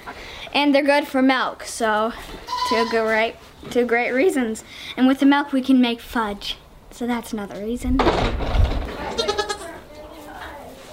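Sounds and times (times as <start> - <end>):
speech: 0.5 - 8.5
goat bleating: 2.5 - 3.2, 9.1 - 9.8.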